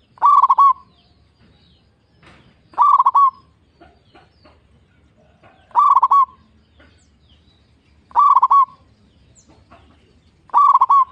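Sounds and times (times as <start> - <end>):
zebra dove singing bubbling coo phrases: 0.0 - 0.9, 2.7 - 4.2, 5.3 - 7.1, 8.1 - 8.9, 9.6 - 11.0.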